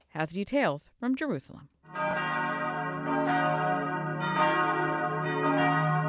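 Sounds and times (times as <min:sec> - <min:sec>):
speech: 0:00.2 - 0:02.4
church bells ringing in a steady peal at the Church of the Holy Sepulchre: 0:01.9 - 0:06.0.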